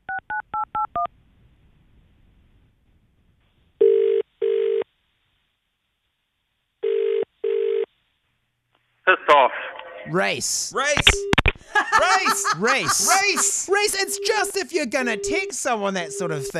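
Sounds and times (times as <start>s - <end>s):
phone keypad dialing beeps: 0.3s - 1.1s, 14.0s - 15.5s
phone ringing tone in double pulses: 3.8s - 4.8s, 6.8s - 7.9s, 12.9s - 16.5s
speech: 10.1s - 11.3s, 12.0s - 16.5s
laughter: 11.6s - 14.6s.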